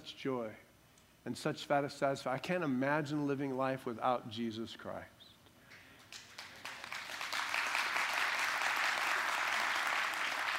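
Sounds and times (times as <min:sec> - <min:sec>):
speech: 0:00.2 - 0:05.2
crowd of people clapping: 0:06.0 - 0:10.5.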